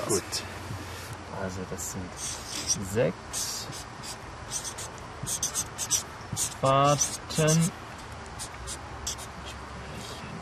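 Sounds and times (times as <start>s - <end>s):
speech: 0.1s - 0.5s, 1.4s - 3.8s, 6.6s - 7.8s
pen scratching on paper writing out a math calculation by hand: 2.2s - 7.7s, 8.4s - 10.2s.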